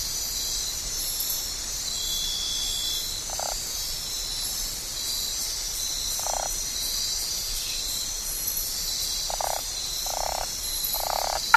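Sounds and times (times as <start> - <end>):
steady high insect chorus in the Ecuadorian Amazon: 0.0 - 11.5
Osteocephalus cabrerai Cabrera's slender-legged treefrog calls in the Ecuadorian Amazon: 3.3 - 3.6, 6.2 - 6.6, 9.3 - 11.5.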